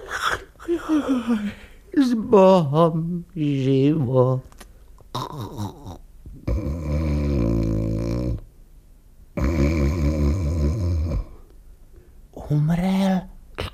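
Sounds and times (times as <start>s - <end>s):
speech: 0.9s - 4.5s, 5.2s - 5.8s, 12.5s - 13.3s
person snoring while asleep: 5.2s - 8.4s, 9.4s - 11.4s.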